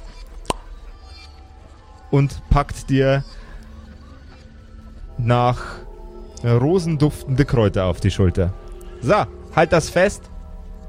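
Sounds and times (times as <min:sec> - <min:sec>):
round slightly moldy cork pulled from a glass jar: 0:00.4 - 0:00.6
speech: 0:02.1 - 0:03.4, 0:05.2 - 0:05.8, 0:06.4 - 0:10.3.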